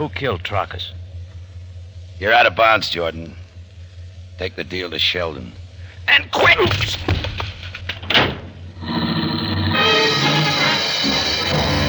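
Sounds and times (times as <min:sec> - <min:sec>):
speech: 0:00.0 - 0:01.0, 0:02.2 - 0:03.4, 0:04.4 - 0:07.3
car engine revving as a car speeds away down a dark street: 0:09.4 - 0:11.8.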